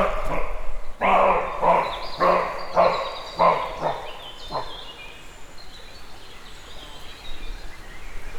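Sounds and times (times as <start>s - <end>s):
roe deer barking in a forest: 0.0s - 5.0s.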